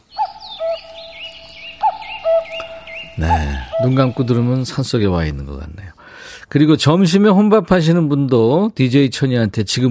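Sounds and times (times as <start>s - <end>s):
cuckoo calling two-note cu-koo: 0.0s - 5.5s
fainter chirping birds twittering: 0.0s - 6.0s
speech: 3.2s - 9.8s.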